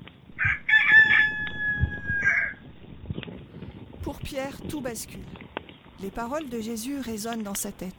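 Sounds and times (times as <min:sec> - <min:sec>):
faint low rumble: 0:00.0 - 0:07.2
rooster crowing: 0:00.4 - 0:02.6
speech: 0:04.1 - 0:05.4, 0:06.0 - 0:07.9.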